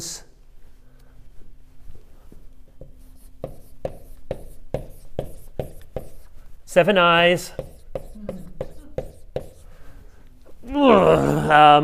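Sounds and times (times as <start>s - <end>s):
drawing strokes and taps while drawing a lamb: 2.8s - 10.0s
speech: 6.8s - 7.7s, 10.9s - 11.8s.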